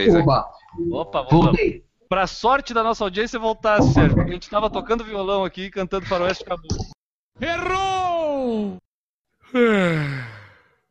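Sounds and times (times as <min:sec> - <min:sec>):
speech: 0:00.0 - 0:08.8, 0:09.5 - 0:10.3
person yawning: 0:09.5 - 0:10.7.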